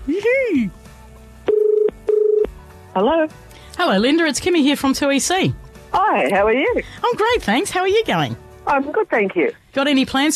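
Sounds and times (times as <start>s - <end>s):
speech: 0.1s - 0.8s, 3.0s - 10.3s
telephone dialing out electronic tone bursts: 1.5s - 2.5s.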